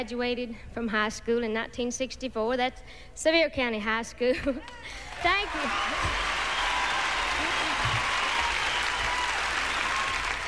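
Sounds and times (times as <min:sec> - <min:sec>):
speech: 0:00.0 - 0:06.4
sustained applause from a large audience: 0:04.9 - 0:10.4.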